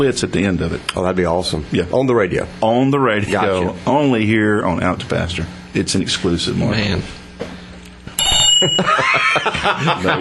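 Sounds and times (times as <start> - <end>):
speech: 0.0 - 7.2, 8.6 - 10.2
jangling ring: 8.2 - 9.0
bright bell ringing with clear metallic tone: 8.2 - 9.3
laughter: 8.6 - 10.2.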